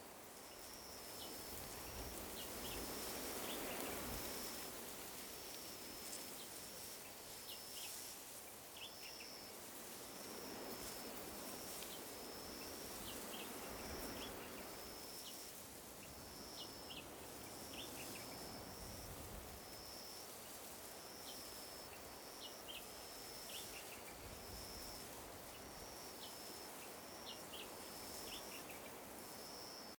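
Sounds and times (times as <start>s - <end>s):
outdoor night ambience at an observatory: 0.0s - 29.9s.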